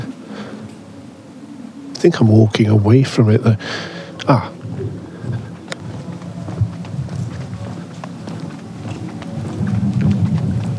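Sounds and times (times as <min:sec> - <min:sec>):
steady rain pattering down through trees: 0:00.0 - 0:10.7
speech: 0:02.0 - 0:04.6
low rumbling background: 0:02.2 - 0:10.7.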